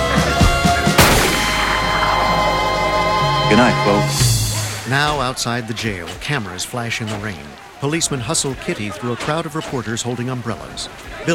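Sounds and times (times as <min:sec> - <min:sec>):
low rhythmic thumping pulses: 0:00.1 - 0:06.4
pistol shot: 0:01.0 - 0:01.8
speech: 0:03.5 - 0:04.2, 0:04.9 - 0:11.3.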